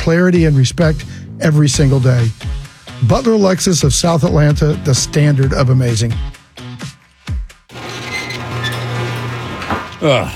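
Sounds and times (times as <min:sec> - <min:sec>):
speech: 0:00.0 - 0:02.4, 0:03.0 - 0:06.4, 0:10.0 - 0:10.3
garage door creaks: 0:07.7 - 0:10.3.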